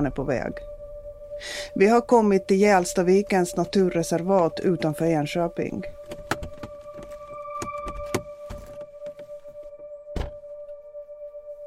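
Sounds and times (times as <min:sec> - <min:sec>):
speech: 0:00.0 - 0:00.7, 0:01.4 - 0:06.0
stopped car hum with tonal whine in parking lot: 0:00.0 - 0:11.3
clicks and thunks inside a car being parked: 0:06.1 - 0:09.3, 0:10.2 - 0:10.4
sharp thump inside a parked car: 0:10.1 - 0:10.4.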